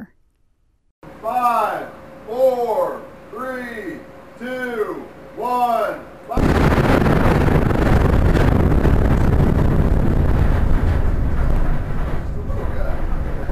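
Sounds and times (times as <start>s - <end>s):
speech: 1.2s - 7.5s
explosives test blast at a limestone quarry lab in Georgetown, Kentucky: 6.4s - 13.5s.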